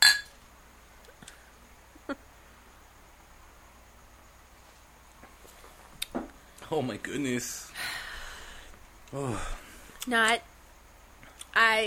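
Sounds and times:
beer glasses clinking in a toast: 0:00.0 - 0:00.4
faint taps and knocks: 0:05.2 - 0:06.7
speech: 0:06.7 - 0:07.9, 0:09.1 - 0:10.5, 0:11.6 - 0:11.8.

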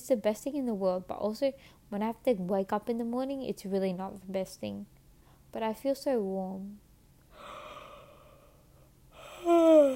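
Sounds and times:
speech: 0:00.1 - 0:06.8
person yawning: 0:07.4 - 0:08.6, 0:09.2 - 0:09.9.

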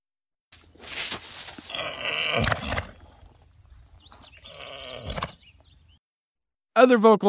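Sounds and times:
mare groaning while foaling: 0:01.6 - 0:06.0
speech: 0:02.4 - 0:02.6, 0:06.8 - 0:07.2.

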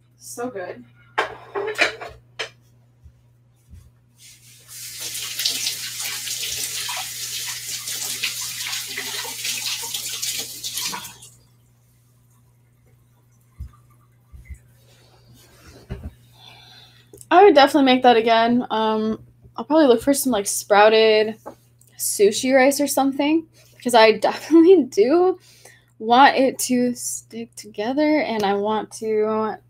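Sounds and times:
speech: 0:00.2 - 0:02.2, 0:17.5 - 0:29.6
tap water running while hands are rinsed: 0:04.2 - 0:11.4.

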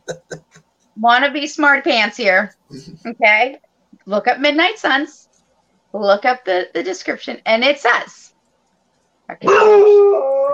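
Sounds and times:
speech: 0:01.0 - 0:05.2, 0:05.9 - 0:08.3, 0:09.3 - 0:10.5
dog yipping, barking and whining howl: 0:09.4 - 0:10.5.

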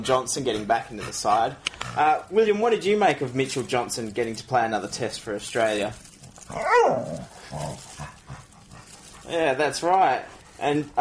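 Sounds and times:
speech: 0:00.0 - 0:07.9, 0:09.3 - 0:11.0
dog whining: 0:06.4 - 0:08.0
dog howling mournfully: 0:06.5 - 0:07.9.

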